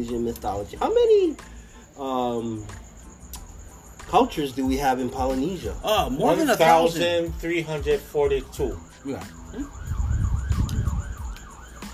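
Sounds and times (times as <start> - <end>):
speech: 0.0 - 2.9, 4.1 - 9.8
low rumble of road traffic: 8.7 - 11.9
emergency vehicle sirens passing outside in Hawaii: 8.9 - 11.9.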